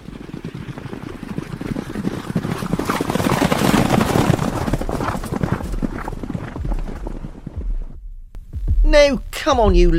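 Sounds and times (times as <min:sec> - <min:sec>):
horse hooves clip-clopping: 0:00.0 - 0:07.9
speech: 0:08.9 - 0:09.9.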